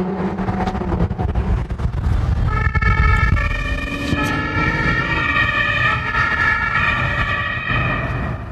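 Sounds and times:
low road rumble: 0.0 - 8.5
police car siren wailing in pursuit of a speeding sports car: 2.5 - 8.5.

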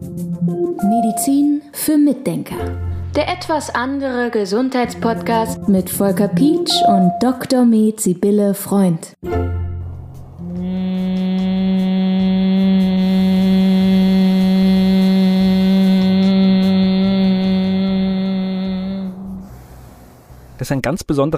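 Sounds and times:
speech: 0.6 - 9.6, 20.6 - 21.3
person humming a low buzzing bee-like note in Bhramari breathing: 10.3 - 20.6.

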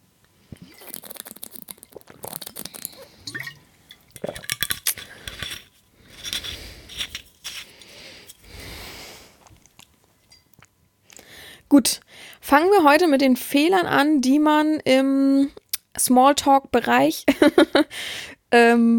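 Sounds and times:
water pouring: 0.6 - 4.8
glass and bottle clinking: 3.2 - 5.2, 10.3 - 10.6
speech: 11.8 - 18.9.

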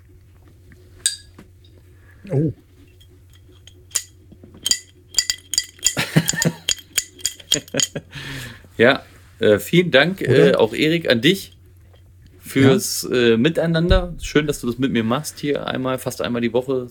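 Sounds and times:
glasses clinking in a toast: 1.0 - 1.4, 2.9 - 8.0
speech: 2.2 - 2.7, 8.8 - 11.6, 12.5 - 16.8.

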